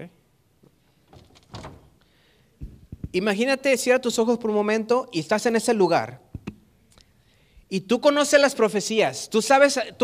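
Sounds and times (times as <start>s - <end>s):
speech: 0.0s - 0.2s, 3.1s - 6.2s, 7.7s - 10.0s
door thudding closed: 1.1s - 1.9s.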